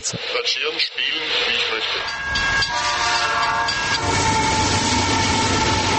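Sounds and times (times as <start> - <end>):
speech: 0.0 - 3.0
model train running on a model railway track: 0.0 - 5.9
whistle-like tonal notes: 1.8 - 5.9.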